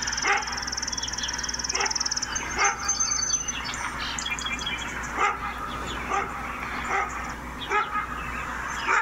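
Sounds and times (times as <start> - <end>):
steady outdoor noise: 0.0 - 9.0
dog barking: 0.2 - 0.6, 1.7 - 2.0, 2.6 - 2.9, 5.2 - 8.1, 8.8 - 9.0.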